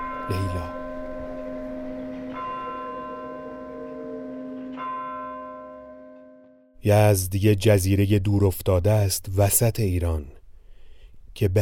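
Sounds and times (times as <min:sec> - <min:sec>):
large clock tower bell tolling: 0:00.0 - 0:06.6
speech: 0:00.3 - 0:00.8, 0:06.8 - 0:10.4, 0:11.4 - 0:11.5.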